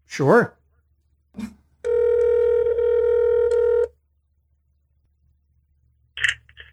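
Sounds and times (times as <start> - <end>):
electronic ring tone over speakerphone: 1.8 - 3.9.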